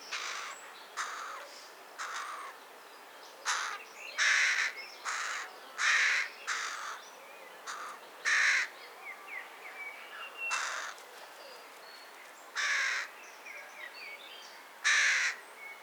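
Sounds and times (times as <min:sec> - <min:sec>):
Carrion crow Corvus corone cawing in hoarse grating calls: 0:00.2 - 0:01.4, 0:02.0 - 0:02.5, 0:03.5 - 0:07.0, 0:07.7 - 0:08.7, 0:10.5 - 0:11.0, 0:12.6 - 0:13.1, 0:14.8 - 0:15.4.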